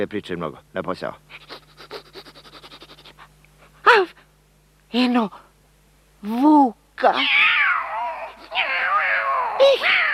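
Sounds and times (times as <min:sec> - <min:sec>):
speech: 0:00.0 - 0:01.6, 0:04.9 - 0:05.4, 0:06.2 - 0:07.4
cat meowing: 0:07.2 - 0:10.1.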